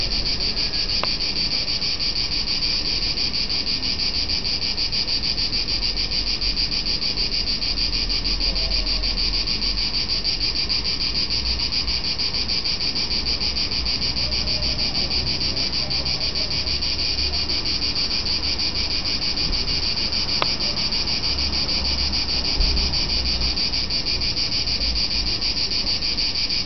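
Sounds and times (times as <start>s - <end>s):
Cicada cicadas: 0.0s - 26.6s.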